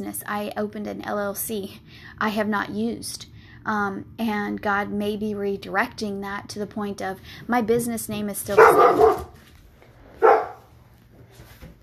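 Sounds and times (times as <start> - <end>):
speech: 0.0 - 9.4
faint hum: 0.0 - 11.8
dog barking: 8.5 - 9.4, 10.2 - 10.7.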